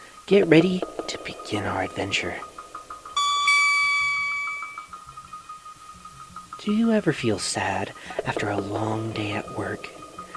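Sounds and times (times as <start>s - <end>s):
speech: 0.3s - 2.5s, 6.6s - 10.0s
bright two-note page-turn chime: 3.2s - 5.1s.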